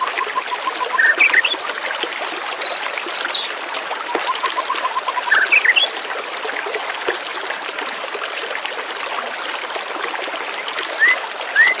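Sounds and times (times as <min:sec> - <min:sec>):
birds calling with rising chirps: 0:00.0 - 0:01.6, 0:02.3 - 0:05.9
water running steadily: 0:00.0 - 0:11.7.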